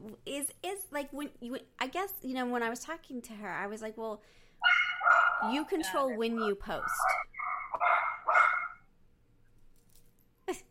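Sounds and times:
speech: 0.3s - 4.8s, 5.4s - 7.9s
dog barking: 4.6s - 8.8s.

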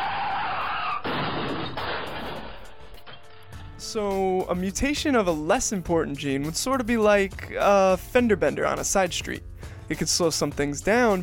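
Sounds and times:
car tires skidding across pavement in a traffic accident: 0.0s - 1.6s
speech: 3.9s - 11.2s.

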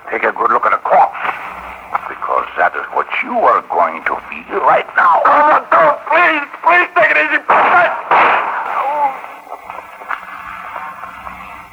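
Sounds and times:
quiet scattered sounds: 0.0s - 11.7s
speech: 0.2s - 0.7s
gunshot: 7.5s - 8.8s.

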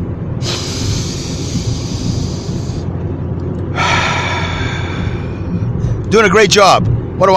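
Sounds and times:
low steady rumble: 0.0s - 7.3s
deep inhale through the nose and exhale through the mouth: 0.4s - 2.9s, 3.7s - 6.1s
speech: 6.1s - 7.3s.

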